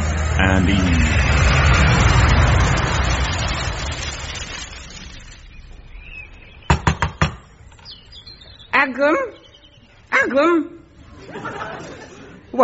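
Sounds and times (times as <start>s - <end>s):
broad rumbling noise: 0.0s - 8.7s
speech: 0.5s - 1.6s, 8.8s - 9.4s, 10.2s - 12.6s
sharp quick knocks on a door: 6.7s - 7.4s
laughter: 11.0s - 12.6s.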